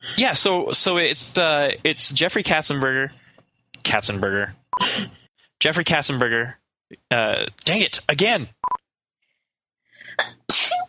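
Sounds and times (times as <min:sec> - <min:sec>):
speech: 0:00.2 - 0:03.2, 0:03.9 - 0:08.6
person sneezing loudly: 0:10.2 - 0:10.8.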